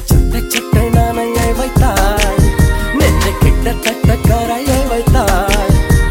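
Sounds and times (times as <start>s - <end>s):
Hindi melody: 0.1s - 6.0s.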